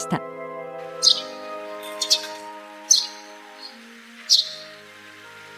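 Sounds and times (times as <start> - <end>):
Eurasian tree sparrow doubled chirps on Kamishima, Mie Prefecture, Japan: 0.9 - 4.8.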